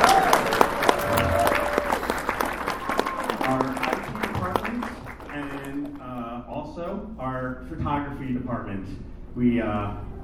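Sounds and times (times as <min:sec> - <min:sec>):
crowd applause at a team presentation event: 0:00.0 - 0:06.1
speech: 0:07.5 - 0:10.1.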